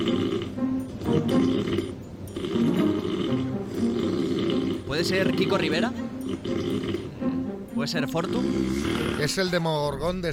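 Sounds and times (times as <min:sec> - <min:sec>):
man snoring loudly with rasping guttural breaths: 0:00.0 - 0:05.6, 0:06.2 - 0:07.4, 0:08.2 - 0:09.4
speech: 0:05.0 - 0:10.3.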